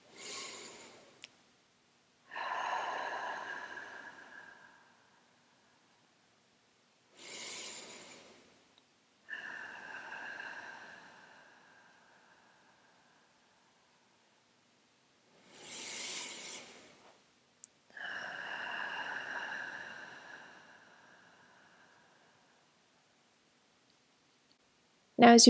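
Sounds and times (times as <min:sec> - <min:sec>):
deep breaths in through nose and out through mouth: 0:00.0 - 0:01.2, 0:02.3 - 0:06.3, 0:07.1 - 0:08.6, 0:09.2 - 0:14.3, 0:15.3 - 0:17.2, 0:17.9 - 0:22.8
speech: 0:25.2 - 0:25.4.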